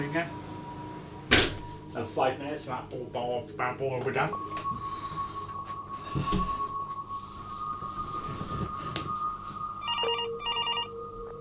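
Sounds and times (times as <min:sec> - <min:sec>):
steady high hum: 0:00.0 - 0:11.3
speech: 0:02.0 - 0:04.8
telephone ringing: 0:09.8 - 0:11.0.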